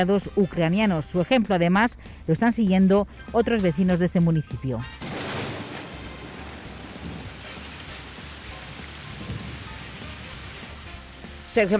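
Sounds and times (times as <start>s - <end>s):
speech: 0.0s - 5.0s, 11.6s - 11.7s
low rumble of thunder: 5.0s - 11.4s
steady rain pouring down outdoors: 5.0s - 11.7s.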